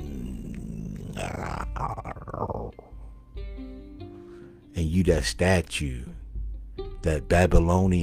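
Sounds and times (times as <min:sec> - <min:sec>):
voice imitating a lion waking up with growling groan and yawn-like roar: 0:00.0 - 0:02.9
speech: 0:04.8 - 0:06.1, 0:07.0 - 0:08.0.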